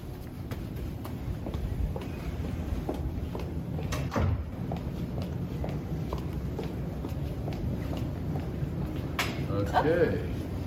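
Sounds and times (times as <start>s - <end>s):
mechanical hum: 0.0s - 10.6s
brand-new elevator doors sliding: 1.8s - 10.6s
speech: 9.7s - 10.3s.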